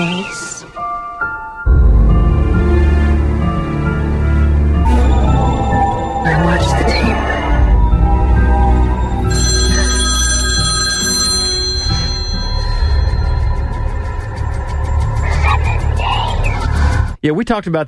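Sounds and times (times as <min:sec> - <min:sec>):
dense sustained droning background of tonal sound: 0:02.1 - 0:10.7, 0:11.6 - 0:17.1
telephone ringing with rapid rattling bell trill: 0:04.9 - 0:07.7, 0:08.8 - 0:14.4
speech: 0:17.2 - 0:17.8.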